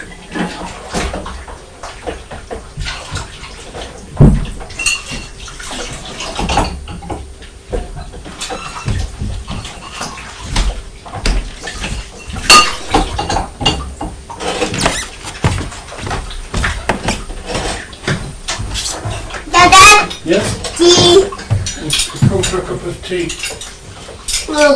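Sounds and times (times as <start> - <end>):
water splashing in a sink: 0.0 - 24.7
cookware clattering in a sink while washing pots: 4.2 - 24.6.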